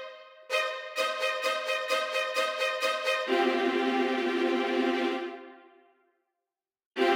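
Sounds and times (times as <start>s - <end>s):
orchestra viola playing: 0.5s - 5.8s, 7.0s - 7.1s.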